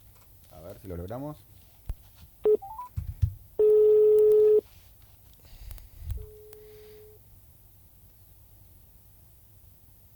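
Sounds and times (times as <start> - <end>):
speech: 0.8 - 1.6
telephone keypad beeps as a dropped call is redialled: 2.5 - 2.9, 3.6 - 4.6.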